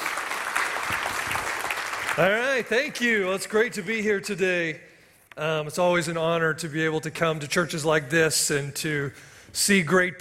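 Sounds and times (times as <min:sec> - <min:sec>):
large crowd applause: 0:00.0 - 0:03.0
speech: 0:02.2 - 0:10.2.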